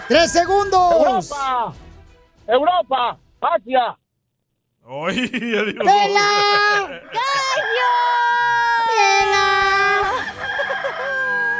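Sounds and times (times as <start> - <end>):
rooster crowing: 0.0 - 1.2, 6.7 - 11.5
speech: 0.1 - 1.9, 2.5 - 4.0, 4.8 - 8.2
laughter: 4.9 - 7.8, 9.9 - 11.1.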